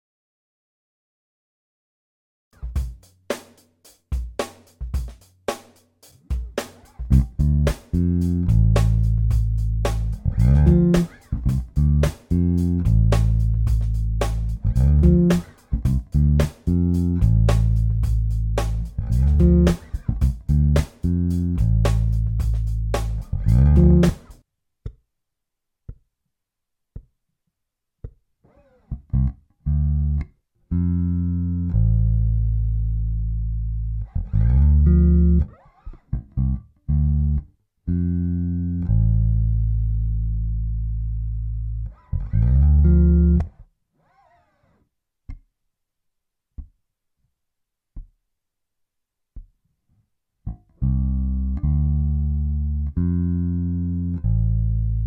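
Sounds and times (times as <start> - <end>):
D minor bass groove with double stops: 6.3 - 24.4, 28.9 - 35.5, 36.2 - 43.5, 50.5 - 55.0.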